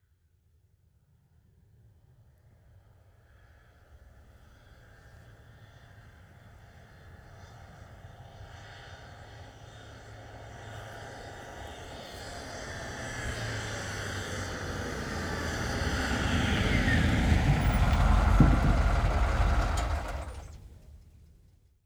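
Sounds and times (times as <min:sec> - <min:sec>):
ambulance approaching and stopping: 0:10.2 - 0:21.0
ambulance engine idling: 0:12.0 - 0:21.3.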